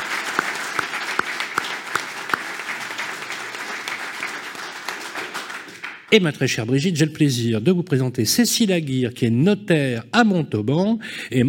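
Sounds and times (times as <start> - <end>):
audience applauding: 0.0 - 6.2
loud evenly spaced claps: 0.0 - 6.2
speech: 6.1 - 11.4.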